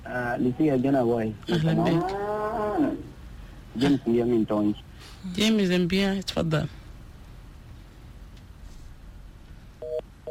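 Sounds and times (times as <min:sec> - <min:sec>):
low hiss: 0:00.0 - 0:10.2
speech: 0:00.1 - 0:03.1, 0:03.7 - 0:06.8
telephone line beeps after a dropped call: 0:09.8 - 0:10.2.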